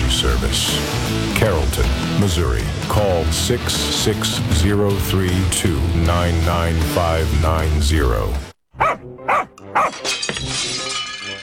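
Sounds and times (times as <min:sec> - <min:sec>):
speech: 0:00.5 - 0:08.5, 0:09.1 - 0:10.9
dog barking: 0:08.8 - 0:10.0
front window glass shattering: 0:09.6 - 0:11.4.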